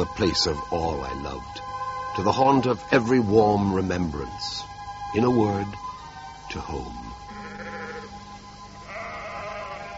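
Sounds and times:
speech: 0.0 - 5.9, 6.5 - 7.0
sheep bleating outdoors on a moor: 7.3 - 8.2, 8.8 - 9.9.

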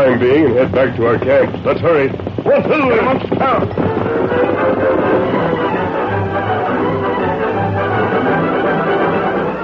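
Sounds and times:
speech: 0.0 - 5.3
heavy downpour of a rainstorm: 0.0 - 9.6.

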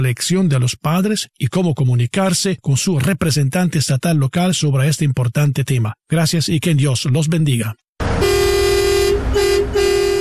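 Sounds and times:
speech: 0.0 - 8.4
truck horn honking: 8.0 - 10.2.

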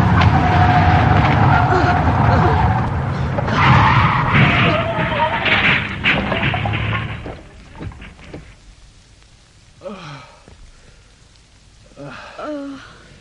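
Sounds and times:
rally car tires squealing as it skids through a bend: 0.0 - 7.2
souped-up rally car roaring: 0.0 - 7.3.

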